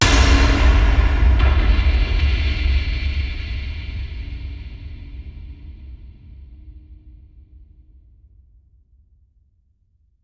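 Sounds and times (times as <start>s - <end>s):
mechatronic cinematic impacts: 0.0s - 2.8s.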